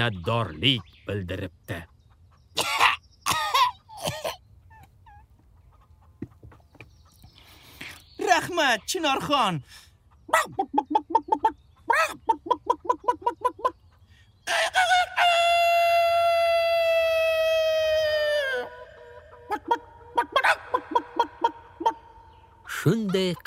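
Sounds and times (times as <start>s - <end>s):
speech: 0.0s - 1.9s, 2.6s - 2.8s, 8.3s - 13.8s, 22.8s - 23.4s
hen clucking: 0.0s - 15.9s, 17.6s - 23.4s
rooster crowing: 14.5s - 19.8s.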